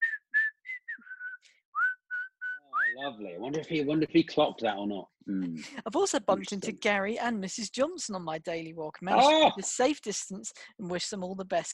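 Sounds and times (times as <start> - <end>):
person whistling a short bright tune as a greeting: 0.0 - 3.0
speech: 3.0 - 11.7.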